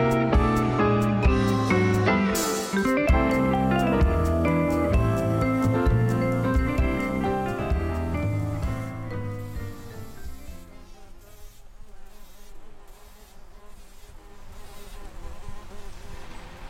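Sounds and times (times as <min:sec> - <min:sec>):
bees buzzing in a rose bush in a garden in Roslagen: 0:00.2 - 0:16.6.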